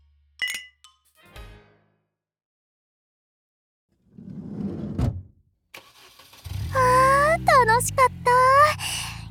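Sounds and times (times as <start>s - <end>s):
light clinks: 0.4s - 1.1s
car engine cranking, catching and idling: 5.7s - 9.2s.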